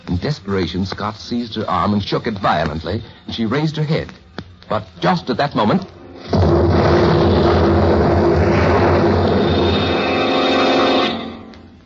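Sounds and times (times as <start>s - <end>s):
speech: 0.0s - 6.6s
explosion: 6.3s - 10.3s.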